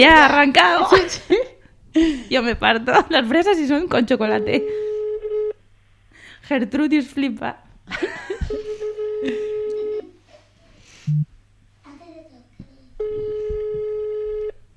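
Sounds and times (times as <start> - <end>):
speech: 0.0 - 4.9, 6.5 - 9.4, 11.1 - 11.3
ringback tone of an unanswered telephone call: 4.4 - 5.6, 8.7 - 10.1, 13.0 - 14.6.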